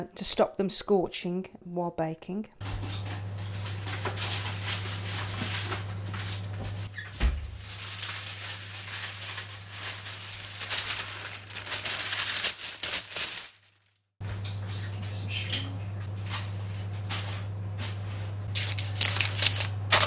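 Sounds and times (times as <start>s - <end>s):
speech: 0.0s - 2.8s
steady low electrical hum: 0.0s - 20.0s
paper crinkling and rustling while folded over a dish: 2.6s - 14.1s, 17.1s - 20.0s.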